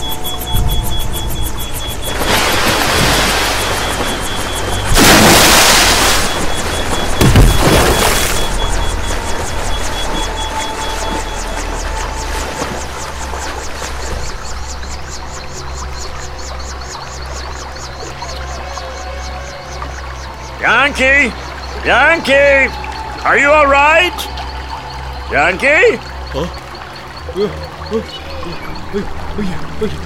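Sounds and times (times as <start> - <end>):
churning pouring river water: 0.0 - 30.0
heavy splintering impacts of a crash landing into river water: 4.9 - 8.4
speech: 21.0 - 24.3, 25.3 - 26.6, 27.4 - 30.0.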